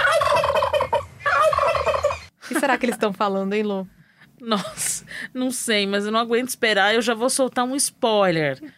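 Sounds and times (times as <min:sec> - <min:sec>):
turkeys gobbling: 0:00.0 - 0:02.4
speech: 0:02.6 - 0:08.7.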